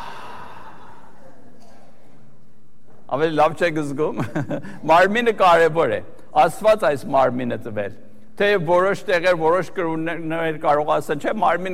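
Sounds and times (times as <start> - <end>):
church congregation breathing deeply: 0.0 - 1.5
speech: 3.1 - 11.7.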